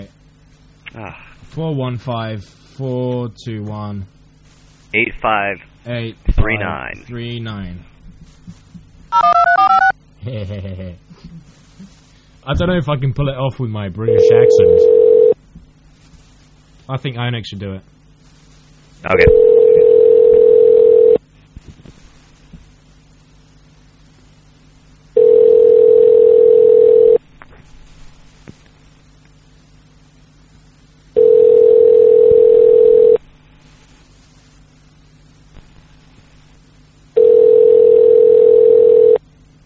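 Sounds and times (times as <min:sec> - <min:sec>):
speech: 0:01.0 - 0:04.2, 0:04.9 - 0:07.9, 0:08.5 - 0:15.2, 0:16.9 - 0:17.9, 0:19.0 - 0:19.5
telephone ringback tone on a call to a payphone on Alcatraz: 0:09.2 - 0:09.9, 0:14.1 - 0:15.4, 0:19.3 - 0:21.2, 0:25.2 - 0:27.2, 0:31.2 - 0:33.2, 0:37.2 - 0:39.2.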